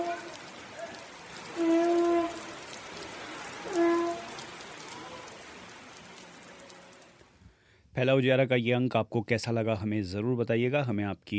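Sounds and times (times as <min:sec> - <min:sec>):
steady rain falling outdoors: 0:00.0 - 0:07.4
speech: 0:08.0 - 0:11.3.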